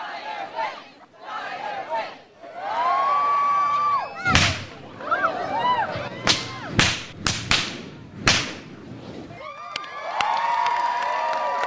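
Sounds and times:
voices calling out: 0.0 - 6.8
lively crowd shouting and cheering: 0.0 - 7.0, 9.3 - 11.6
flaming whip cracking: 4.3 - 4.8, 6.2 - 9.2.

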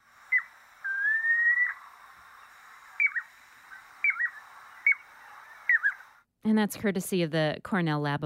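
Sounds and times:
piping plover giving clear whistled calls: 0.0 - 6.2
speech: 6.5 - 8.2.

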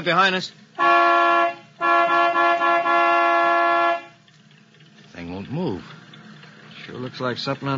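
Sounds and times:
speech: 0.0 - 1.0, 5.5 - 6.0, 6.9 - 7.7
vehicle horn honking: 0.8 - 4.2.

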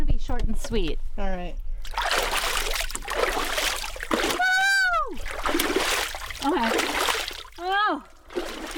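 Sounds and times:
speech: 0.3 - 2.1, 6.4 - 7.0
ice water splashing on face and hands: 1.8 - 8.7
person exclaiming: 4.3 - 5.2.

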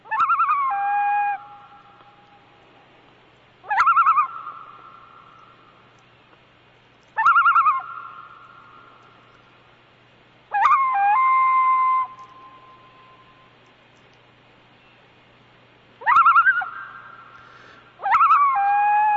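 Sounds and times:
faint low hum: 0.0 - 19.1
common loon wailing calls to its mate: 0.1 - 2.0, 3.6 - 5.5, 7.2 - 9.0, 10.5 - 13.2, 16.0 - 19.1.

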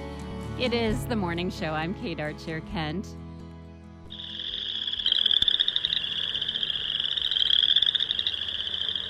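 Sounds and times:
speech: 0.6 - 3.2
boreal chorus frogs trilling: 4.1 - 9.0.

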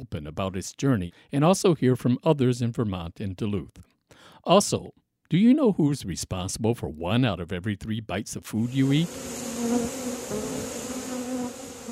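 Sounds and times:
speech: 0.0 - 9.9
bees buzzing: 8.7 - 11.8.

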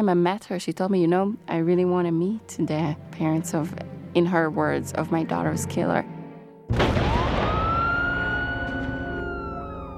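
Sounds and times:
speech: 0.0 - 7.0
ambulance siren wailing: 7.0 - 9.9.

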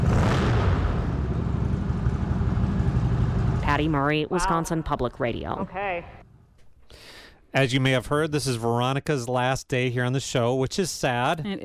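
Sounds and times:
motorcycle engine rumble: 0.0 - 4.2
speech: 3.8 - 6.2, 6.9 - 11.6.

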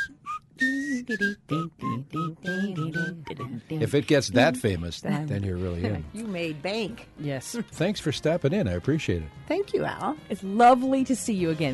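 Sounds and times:
person whistling a TV theme melody: 0.0 - 4.8
speech: 0.6 - 11.7.

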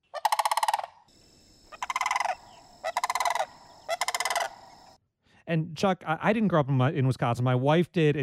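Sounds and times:
migrating sandhill crane calls: 0.0 - 1.0, 1.6 - 5.0
speech: 5.5 - 8.2.

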